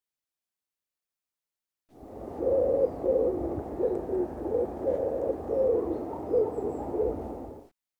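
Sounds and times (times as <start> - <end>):
background hiss: 2.0 - 7.6
bird cooing: 2.0 - 7.7.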